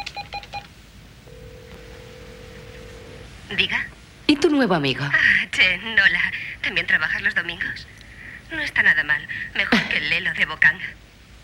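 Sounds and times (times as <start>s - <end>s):
steady telephone line tone: 0.0s - 0.7s, 1.3s - 3.3s
touch-tone dialing on a telephone: 0.0s - 0.7s
speech: 3.5s - 11.1s.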